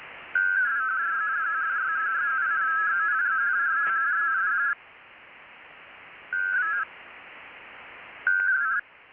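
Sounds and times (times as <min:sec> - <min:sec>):
WINMOR amateur radio digital mode waveform with FSK and PSK tones: 0:00.4 - 0:04.8, 0:06.3 - 0:06.9, 0:08.3 - 0:08.8.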